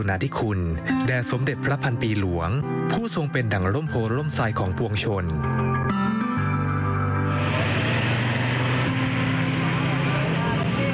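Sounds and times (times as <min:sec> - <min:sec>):
speech: 0:00.0 - 0:06.0
busy road traffic roar: 0:07.2 - 0:10.9
public city bus in Bangkok idling: 0:07.3 - 0:10.9.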